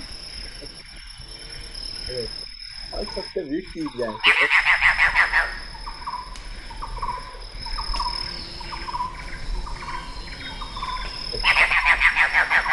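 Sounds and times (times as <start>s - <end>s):
red-bearded bird's soft repeated chirps: 0.0s - 12.7s
steady insect-like hiss: 0.0s - 12.7s
speech: 2.1s - 2.4s, 3.0s - 4.7s
red-bearded bird's harsh dog-like call: 4.2s - 5.6s, 11.4s - 12.7s.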